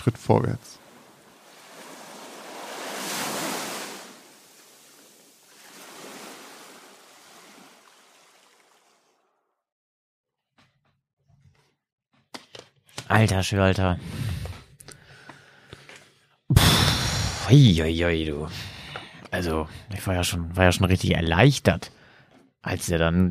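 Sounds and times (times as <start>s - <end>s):
speech: 0.0s - 0.8s, 13.1s - 14.5s, 17.5s - 18.7s, 19.3s - 22.0s, 22.6s - 23.3s
ocean waves surging with a hiss of spray: 0.6s - 9.1s.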